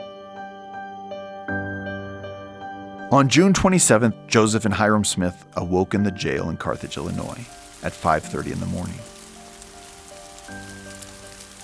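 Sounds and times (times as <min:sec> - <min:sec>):
speech: 0:03.1 - 0:09.2
steady rain falling: 0:06.2 - 0:11.6.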